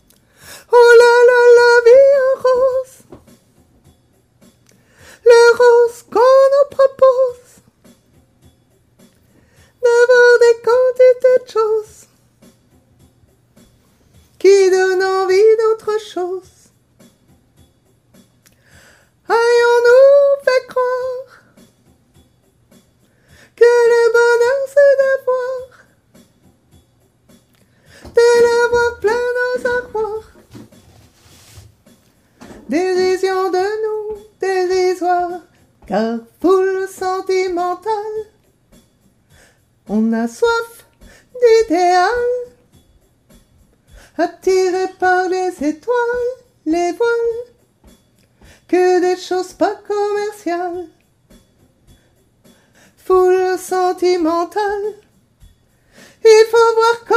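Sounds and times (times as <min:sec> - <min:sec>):
soprano singing a couplet: 0:00.7 - 0:03.2, 0:05.2 - 0:07.6, 0:09.8 - 0:12.1, 0:14.4 - 0:16.7, 0:19.2 - 0:21.5, 0:23.6 - 0:25.9, 0:27.9 - 0:30.8, 0:32.4 - 0:38.4, 0:39.9 - 0:42.6, 0:44.1 - 0:47.6, 0:48.7 - 0:51.0, 0:53.0 - 0:55.1, 0:56.2 - 0:57.1.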